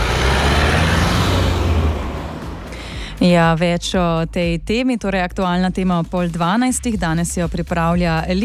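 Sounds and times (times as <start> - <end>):
busy road traffic with cars, trucks and buses: 0.0 - 4.2
speech: 3.2 - 8.4.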